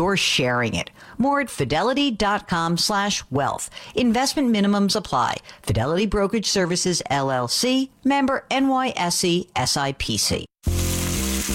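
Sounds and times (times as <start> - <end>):
speech: 0.0 - 10.8
steak searing in its juices on a pellet grill: 10.6 - 11.5.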